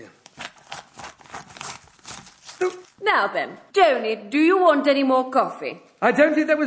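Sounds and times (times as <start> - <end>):
scissors cutting a hole in a newspaper: 0.2 - 3.0
speech: 2.6 - 6.6.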